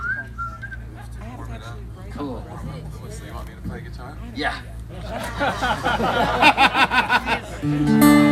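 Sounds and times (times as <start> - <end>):
human whistling a solo within a sung song: 0.0 - 0.9
steady low hum: 0.0 - 8.3
speech: 3.7 - 8.3
laughter: 4.4 - 8.3.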